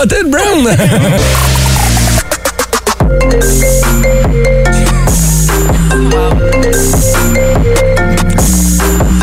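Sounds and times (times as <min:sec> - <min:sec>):
speech: 0:00.0 - 0:01.6, 0:03.1 - 0:04.7
laughter: 0:00.4 - 0:03.0
iPhone ringtone melody: 0:02.2 - 0:09.2.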